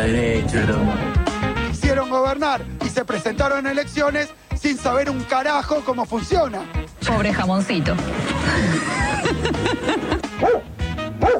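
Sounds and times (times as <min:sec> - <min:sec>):
speech: 0:00.1 - 0:01.2, 0:02.0 - 0:11.3
laughter: 0:08.0 - 0:10.4
dog barking in sharp yappy barks: 0:10.4 - 0:11.3.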